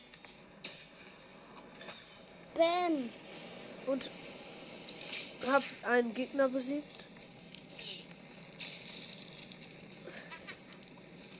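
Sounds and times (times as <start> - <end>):
video game fire burning with hissing crackle: 0.0 - 11.3
speech: 2.6 - 3.3, 3.9 - 4.3, 5.4 - 7.0.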